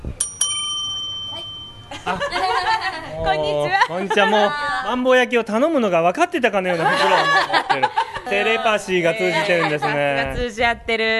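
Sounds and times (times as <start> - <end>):
call bell ringing at a takeout counter: 0.2 - 2.6
laughter: 1.9 - 4.8, 6.6 - 10.4
speech: 3.3 - 11.1.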